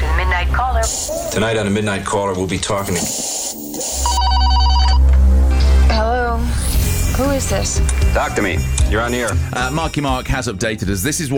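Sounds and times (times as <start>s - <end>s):
speech: 0.6s - 3.4s, 7.2s - 11.3s
telephone ringing on an outgoing call: 3.9s - 5.1s
steady low rumble: 5.0s - 9.7s.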